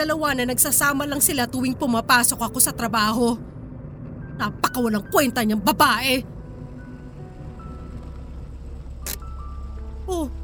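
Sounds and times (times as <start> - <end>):
speech: 0.0 - 3.6, 4.4 - 6.4, 10.1 - 10.4
car engine humming as the car slows and pulls over: 4.6 - 10.4.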